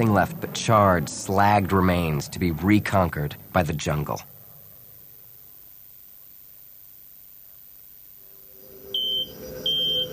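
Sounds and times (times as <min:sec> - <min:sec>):
speech: 0:00.0 - 0:04.3
low steady hum: 0:00.0 - 0:10.1
spaceship communications system giving short high electronic beeps: 0:08.9 - 0:10.1.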